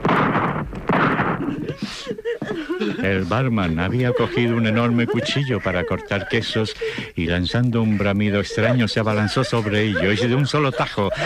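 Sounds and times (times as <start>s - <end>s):
loud bursts of gunfire with rumbling tail: 0.0s - 1.5s
quieter scattered noises: 0.0s - 11.2s
laughter: 1.4s - 11.2s
speech: 2.8s - 11.2s.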